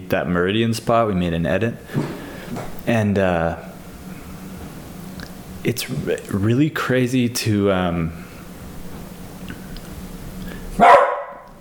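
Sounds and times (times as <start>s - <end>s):
low hum: 0.0s - 11.6s
speech: 0.1s - 3.7s, 5.6s - 8.2s
dog barking: 10.8s - 11.5s.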